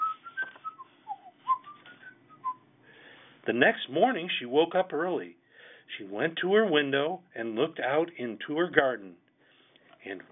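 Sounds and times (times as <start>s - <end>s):
old woman whistling a lilting tune: 0.0s - 2.6s
speech: 3.4s - 9.2s, 10.0s - 10.2s.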